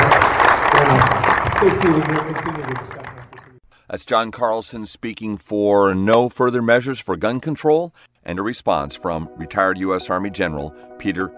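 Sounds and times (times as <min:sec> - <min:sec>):
crowd applauding a speaker: 0:00.0 - 0:03.6
speech: 0:01.6 - 0:03.0, 0:03.9 - 0:11.3.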